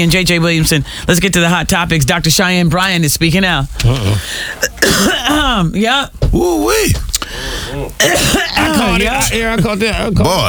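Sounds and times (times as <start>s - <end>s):
speech: 0.0s - 10.4s
strained voiced sounds: 0.0s - 10.4s
loud coughing and throat clearing: 3.8s - 5.6s, 7.6s - 9.7s.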